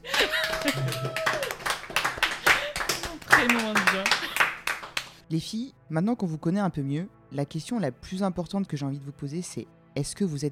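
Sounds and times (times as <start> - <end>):
laughter: 0.0 - 4.6
crowd applauding: 0.0 - 5.2
speech: 5.3 - 10.5.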